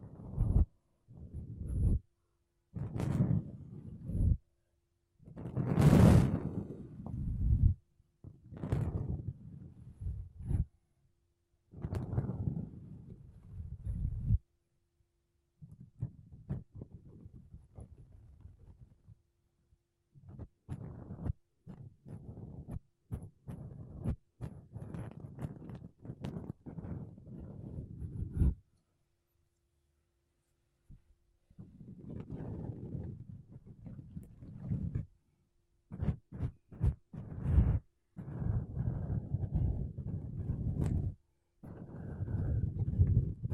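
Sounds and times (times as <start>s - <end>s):
makeup brushes and sponge rubbing across a microphone: 0.0s - 2.0s, 2.8s - 4.4s, 5.3s - 7.8s, 8.5s - 10.7s, 11.8s - 14.4s, 15.7s - 18.9s, 20.3s - 28.7s, 31.6s - 35.1s, 35.9s - 43.5s.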